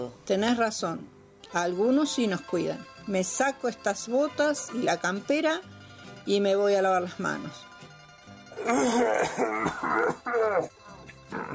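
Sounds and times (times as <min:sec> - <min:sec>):
speech: 0:00.0 - 0:05.7, 0:06.3 - 0:07.7, 0:08.6 - 0:11.5
man coughing harshly: 0:08.6 - 0:10.7.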